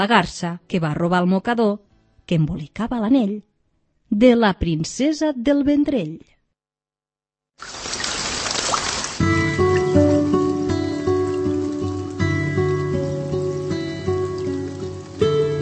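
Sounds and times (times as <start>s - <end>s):
speech: 0.0s - 3.5s, 4.1s - 6.4s, 7.6s - 7.9s
water splashing and hissing: 7.6s - 15.6s.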